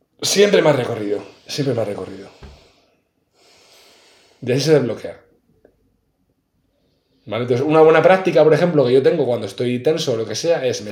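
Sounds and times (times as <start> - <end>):
speech: 0.2 - 2.5, 4.4 - 5.2, 7.3 - 10.8
long deep breath drawn in through the nose: 1.0 - 4.5.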